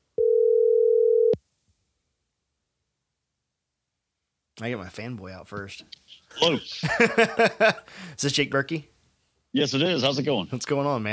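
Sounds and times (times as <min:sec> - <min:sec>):
steady telephone dial tone before a phone call connects: 0:00.2 - 0:01.4
speech: 0:04.6 - 0:08.9, 0:09.5 - 0:11.1
laughter: 0:06.3 - 0:08.2.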